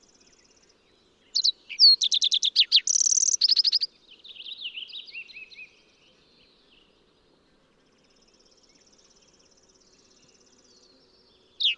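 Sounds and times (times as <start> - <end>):
fox sparrow singing: 0.0 - 6.6, 11.6 - 11.7.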